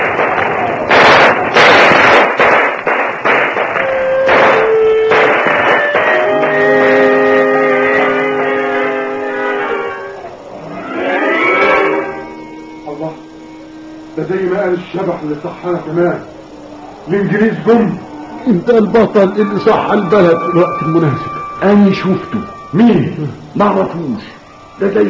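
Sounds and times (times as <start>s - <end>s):
gunshots fired on arrival in a village: 0.0s - 7.0s
sustained tones: 2.8s - 25.0s
speech: 14.9s - 16.3s, 17.1s - 25.0s.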